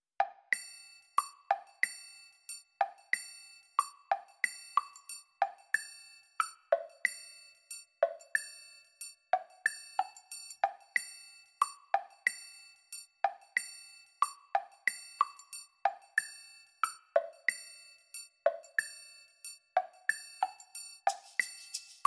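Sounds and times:
light percussion: 0.3s - 22.0s
mallets: 21.1s - 22.0s.

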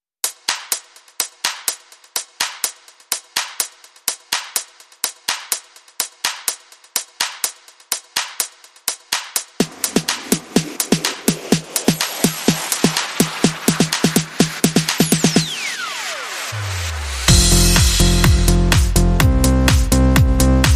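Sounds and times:
drums and bass: 4.2s - 20.7s.

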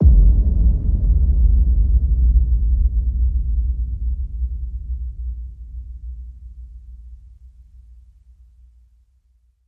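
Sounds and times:
low hit: 0.0s - 6.1s.

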